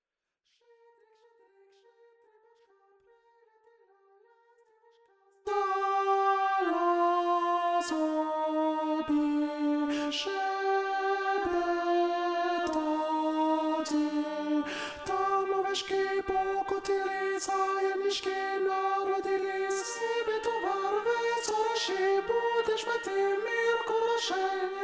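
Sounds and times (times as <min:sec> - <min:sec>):
alto voice singing a carol: 0:05.5 - 0:24.8.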